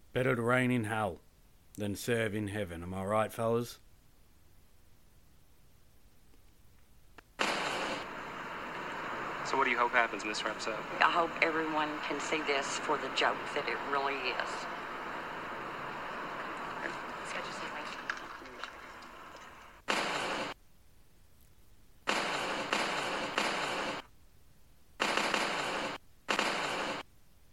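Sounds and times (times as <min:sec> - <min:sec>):
speech: 0:00.2 - 0:01.2, 0:01.8 - 0:03.8, 0:09.5 - 0:14.8
loud sharp-edged crackling bursts from a film: 0:07.2 - 0:20.6, 0:22.0 - 0:24.1, 0:25.0 - 0:27.1.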